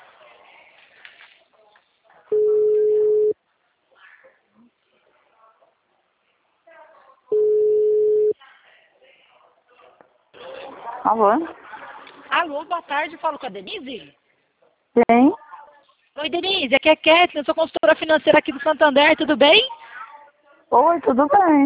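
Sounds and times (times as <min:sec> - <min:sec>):
faint talk: 0:00.0 - 0:07.4, 0:08.3 - 0:13.4, 0:14.6 - 0:16.2, 0:19.6 - 0:21.6
telephone ringback tone on an outgoing call: 0:02.3 - 0:03.4, 0:07.3 - 0:08.3
speech: 0:11.0 - 0:11.6, 0:12.5 - 0:14.2, 0:15.0 - 0:15.3, 0:16.2 - 0:19.8, 0:20.7 - 0:21.6.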